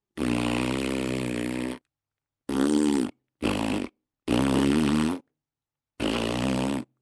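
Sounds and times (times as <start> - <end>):
fart: 0.2 - 1.8, 2.5 - 5.3, 6.0 - 6.9.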